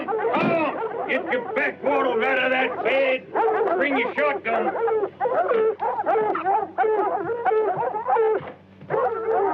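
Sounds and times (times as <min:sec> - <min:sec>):
pack of wild dogs from the swamp barking and yipping: 0:00.0 - 0:09.5
speech: 0:01.1 - 0:09.5.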